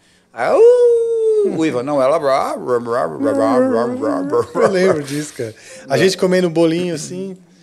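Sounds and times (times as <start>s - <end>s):
speech: 0.3s - 7.5s
dog singing along in a warbling sing-song: 3.0s - 4.8s
laughter: 3.2s - 6.0s.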